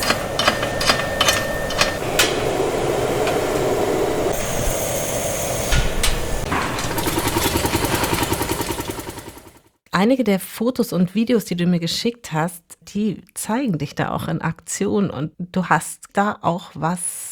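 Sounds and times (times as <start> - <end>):
machines thumping and clattering in a glass factory: 0.0 - 9.6
speech: 10.0 - 17.3.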